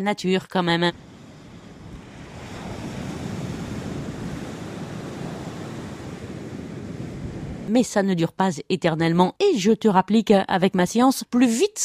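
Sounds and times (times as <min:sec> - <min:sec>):
speech: 0:00.0 - 0:01.1, 0:07.7 - 0:11.8
sea waves washing against a quay at high tide: 0:00.9 - 0:07.7
wind noise on the microphone: 0:00.9 - 0:07.7.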